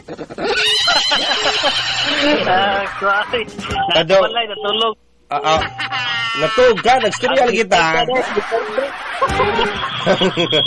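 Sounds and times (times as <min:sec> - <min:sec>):
laughter: 0:00.0 - 0:04.1, 0:05.4 - 0:10.6
speech: 0:00.1 - 0:10.6
horse whinnying: 0:00.5 - 0:02.6.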